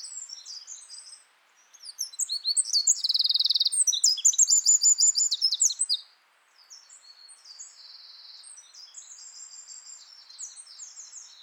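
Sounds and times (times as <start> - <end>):
Eurasian wren Troglodytes troglodytes trilling and twittering song: 1.9 - 6.0.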